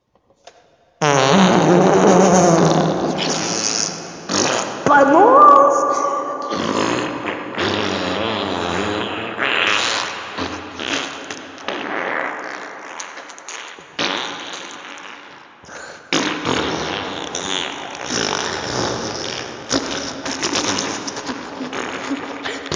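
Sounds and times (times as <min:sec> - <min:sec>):
mega fart with reverb: 0:01.0 - 0:22.7.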